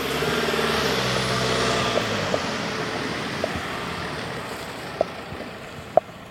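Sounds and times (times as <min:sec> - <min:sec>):
white van engine arriving on a residential road: 0:00.0 - 0:06.2.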